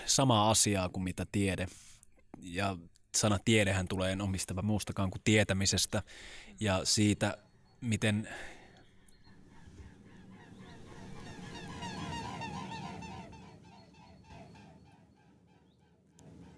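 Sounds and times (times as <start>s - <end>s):
speech: 0.1s - 8.6s
pair of swans calling with nasal trumpeting honks: 9.4s - 15.7s.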